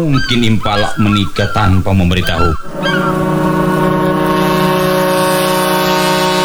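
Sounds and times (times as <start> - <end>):
speech: 0.0 - 2.9
large ship's engine droning while docking at a harbor pier: 2.0 - 6.4.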